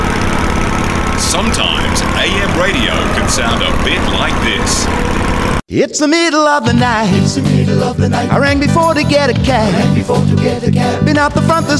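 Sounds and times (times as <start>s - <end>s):
motorbike engine roaring at 110 km/h on a motorway: 0.0s - 5.6s
speech: 1.4s - 11.7s.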